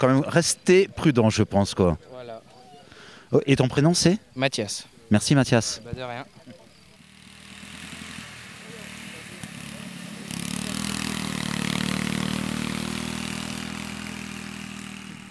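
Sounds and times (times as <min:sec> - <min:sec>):
speech: 0:00.0 - 0:02.1, 0:03.3 - 0:06.6
ride-on lawn mower tractor engine running: 0:05.8 - 0:15.3.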